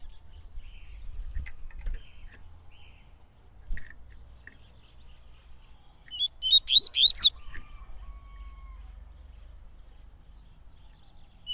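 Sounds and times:
Yellow-bellied seedeater whistled song: 6.1 - 7.4.

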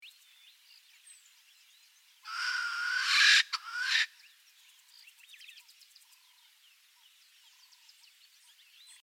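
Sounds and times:
red-necked francolin calling: 2.2 - 4.2.

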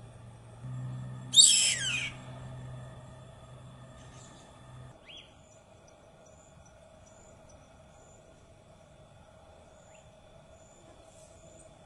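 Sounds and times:
low droning hum: 0.0 - 11.8
white hawk high rough screech: 1.3 - 2.4.

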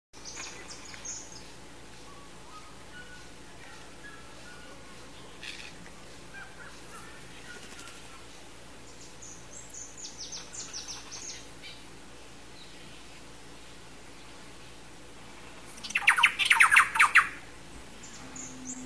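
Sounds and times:
Boucard's wren singing: 0.2 - 8.3, 8.9 - 11.9, 15.7 - 18.8.

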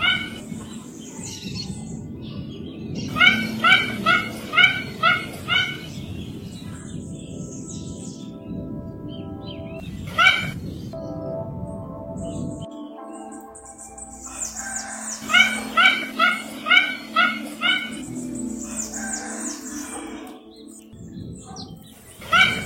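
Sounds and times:
Mandarin duck yelping calls: 0.0 - 0.4, 3.1 - 6.0, 10.1 - 10.6, 14.8 - 18.0, 22.2 - 22.6.

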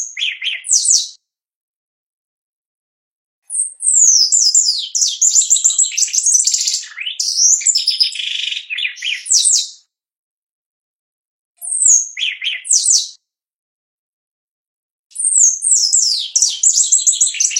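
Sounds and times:
shiny cowbird song of high gurgling whistles and rattling trills: 0.0 - 1.2, 3.5 - 9.8, 11.6 - 13.2, 15.2 - 17.5.

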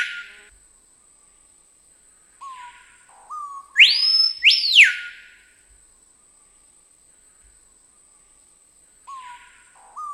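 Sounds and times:
screaming piha song with low whistles and loud ringing notes: 0.0 - 0.5, 3.3 - 5.4, 9.1 - 10.1.

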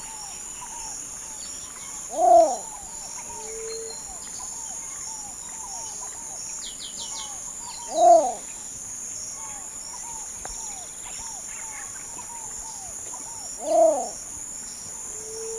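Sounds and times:
light background hiss: 0.0 - 15.5
least bittern cooing: 2.1 - 2.6, 7.9 - 8.4, 13.6 - 14.2.

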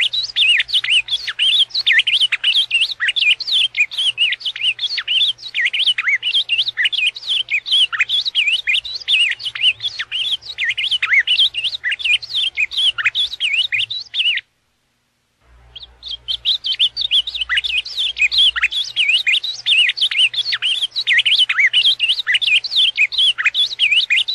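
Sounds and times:
ultramarine grosbeak whistled warbling song: 0.0 - 14.4, 15.7 - 24.3.

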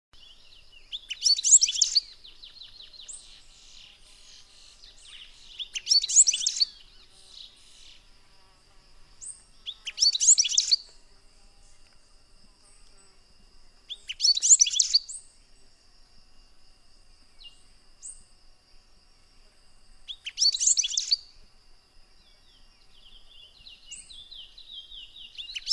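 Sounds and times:
gaturamo miudo singing: 0.2 - 8.5, 9.2 - 11.0, 13.8 - 15.9, 17.2 - 18.4, 20.1 - 21.4, 22.1 - 25.7.

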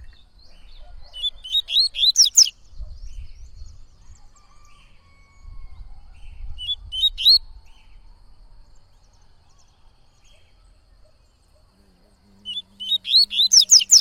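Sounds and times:
Coleiro-baiano whistled song in tui-tui style: 1.2 - 3.6, 6.5 - 7.5, 12.5 - 13.9.

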